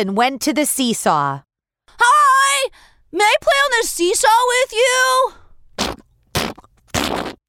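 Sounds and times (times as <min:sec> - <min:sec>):
speech: 0:00.0 - 0:05.4
loud rasping fart sound effects: 0:05.8 - 0:07.4.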